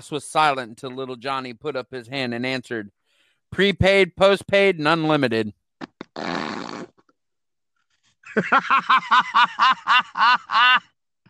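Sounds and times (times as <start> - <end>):
speech: 0.0 - 5.6, 8.4 - 10.9
mouth-made fart noise: 5.8 - 7.1
rhythmic pulsing laughs: 8.3 - 10.8.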